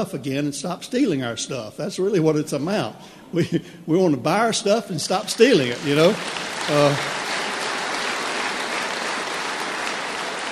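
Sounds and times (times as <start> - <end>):
speech: 0.0 - 7.2
large crowd clapping: 5.3 - 10.5.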